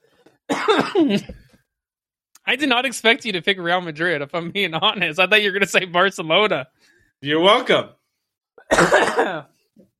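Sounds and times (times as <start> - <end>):
person coughing: 0.5 - 1.4, 8.6 - 9.5
raspy throat clearing: 0.5 - 1.4, 8.6 - 9.5
speech: 0.7 - 1.4, 2.5 - 8.0, 8.6 - 9.9.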